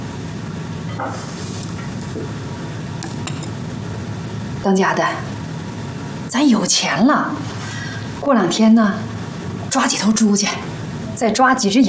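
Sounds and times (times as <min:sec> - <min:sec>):
speech: 0:01.0 - 0:01.4, 0:04.6 - 0:05.3, 0:06.3 - 0:07.6, 0:08.2 - 0:09.1, 0:09.7 - 0:11.8
dishes and utensils clinking: 0:03.0 - 0:03.6.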